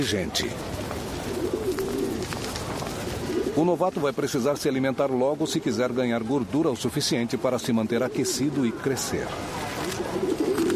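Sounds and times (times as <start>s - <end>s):
speech: 0.0s - 0.8s, 3.6s - 9.8s
steady noise: 0.0s - 10.7s
pigeon giving a soft rolling low coo: 0.8s - 3.6s, 7.8s - 10.7s.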